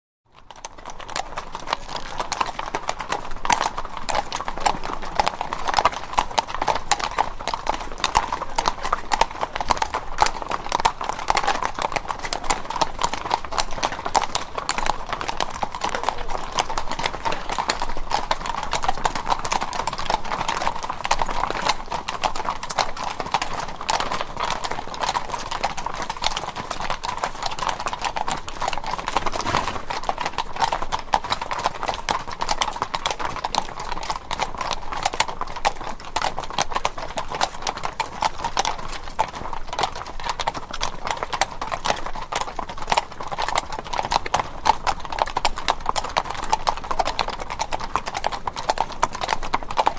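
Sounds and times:
cavalry horses walking on cobblestones: 0.3s - 49.9s.

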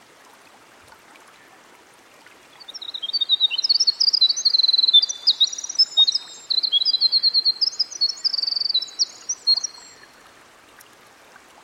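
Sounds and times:
faint steady hiss: 0.0s - 11.6s
winter wren singing by a stream: 2.6s - 10.1s.

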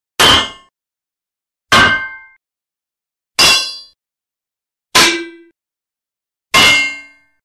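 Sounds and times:
metal pipe impact with ring out: 0.2s - 0.7s, 1.7s - 2.4s, 3.4s - 4.0s, 5.0s - 5.6s, 6.5s - 7.4s.

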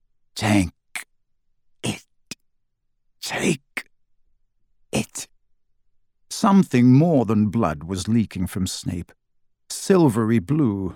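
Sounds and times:
speech: 0.4s - 0.8s, 3.3s - 3.6s, 6.4s - 9.2s, 9.9s - 10.9s
rasping, gurgling throat noises of a dying man: 0.4s - 1.1s, 1.8s - 2.4s, 3.2s - 3.9s, 5.0s - 5.3s.

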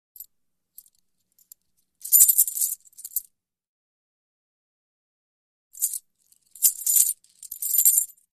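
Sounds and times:
coins jingling: 2.0s - 3.2s, 5.8s - 8.1s.

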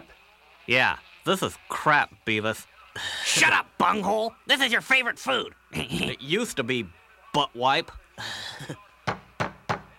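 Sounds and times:
speech: 0.7s - 8.8s
firm knocks on a door: 9.1s - 9.9s.

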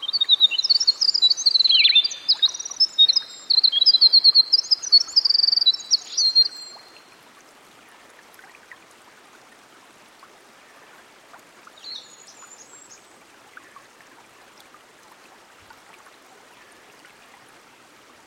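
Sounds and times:
winter wren song by a stream: 0.0s - 7.0s.

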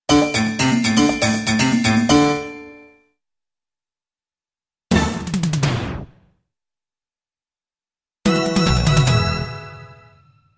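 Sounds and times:
keyboard in short up-tempo music track: 0.1s - 3.1s, 8.2s - 10.5s
drum: 4.9s - 6.1s.

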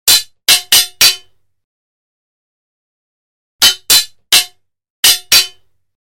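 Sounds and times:
broadsword hit combo: 0.1s - 1.3s, 3.6s - 5.7s.

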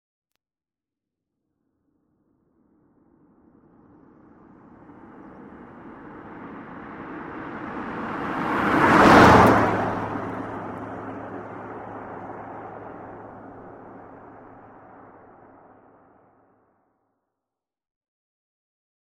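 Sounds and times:
Ford Custom passing by: 3.2s - 16.3s.

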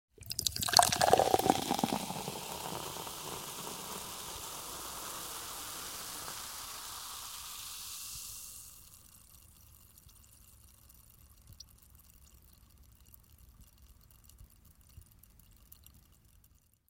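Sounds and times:
soda pouring into an empty glass: 0.2s - 10.9s.

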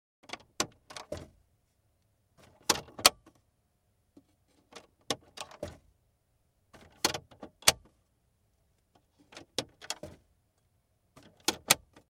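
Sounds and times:
car glove compartment door opening: 0.2s - 1.4s, 2.4s - 3.4s, 4.2s - 5.9s, 6.7s - 8.0s, 9.0s - 10.3s, 11.1s - 12.0s
car glove compartment door closing: 0.3s - 1.4s, 2.4s - 3.4s, 4.6s - 5.9s, 6.7s - 7.9s, 9.2s - 10.3s, 11.1s - 12.0s.

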